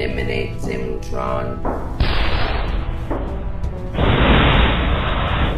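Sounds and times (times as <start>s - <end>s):
speech: 0.2s - 2.1s
explosive grenades exploding as a robot launches them: 2.0s - 3.1s, 3.9s - 5.5s.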